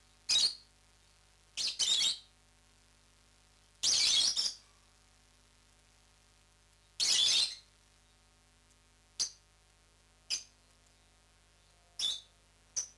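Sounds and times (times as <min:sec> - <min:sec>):
rosy-faced lovebird Agapornis roseicollis shrieking and chirping: 0:01.6 - 0:02.3, 0:03.8 - 0:04.6, 0:07.0 - 0:07.6, 0:12.0 - 0:12.3.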